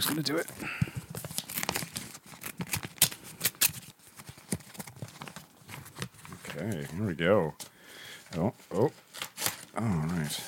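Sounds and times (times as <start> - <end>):
speech: 0.0 - 0.9, 6.6 - 7.6, 8.3 - 9.0, 9.8 - 10.4
paper envelope holding a card being torn open: 0.5 - 6.6, 9.0 - 10.1.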